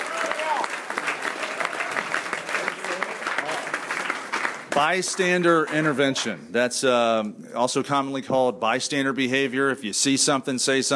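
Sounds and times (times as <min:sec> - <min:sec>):
audience applause: 0:00.0 - 0:06.3
speech: 0:04.8 - 0:10.9.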